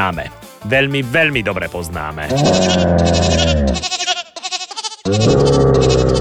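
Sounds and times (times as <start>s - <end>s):
speech: 0.0s - 4.1s, 5.1s - 6.1s
goat bleating with synthesizer-like tone: 2.2s - 6.1s.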